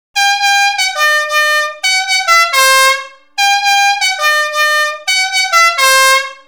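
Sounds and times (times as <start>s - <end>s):
novelty pneumatic music horn trumpet on car or van: 0.2s - 6.4s.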